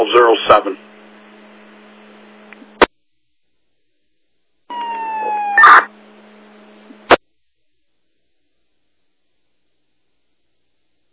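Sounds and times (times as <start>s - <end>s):
speech: 0.0s - 0.9s
fire dispatch radio alert tones: 4.7s - 5.9s.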